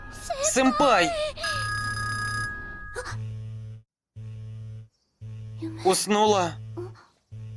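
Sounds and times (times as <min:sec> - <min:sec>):
mobile phone ringing with a bright electronic tone: 0:00.0 - 0:03.0
steady low hum: 0:00.0 - 0:07.5
speech: 0:00.1 - 0:01.4, 0:05.8 - 0:06.6.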